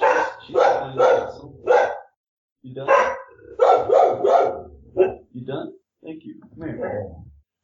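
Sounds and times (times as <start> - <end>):
dog barking: 0.0 - 2.2, 2.8 - 5.3
speech: 2.7 - 3.0.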